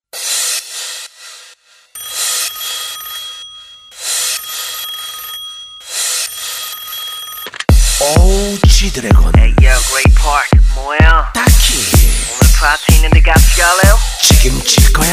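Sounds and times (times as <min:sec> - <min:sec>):
telephone ringing with bright rattling bell tone: 0:02.0 - 0:07.6
speech: 0:08.8 - 0:12.0, 0:12.6 - 0:15.1.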